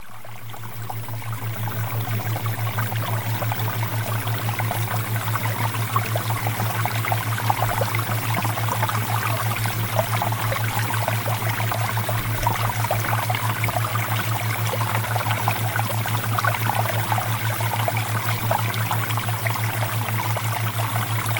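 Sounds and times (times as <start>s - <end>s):
flowing water: 0.0s - 21.3s.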